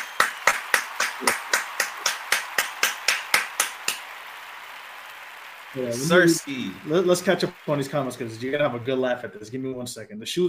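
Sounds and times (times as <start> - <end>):
person clapping: 0.0 - 9.1
speech: 5.7 - 10.4.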